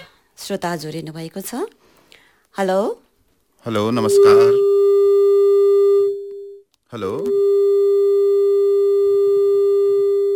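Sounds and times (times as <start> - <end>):
speech: 0.5 - 3.0, 3.6 - 4.8, 6.9 - 7.6
telephone line tone on a failed call: 4.0 - 10.3.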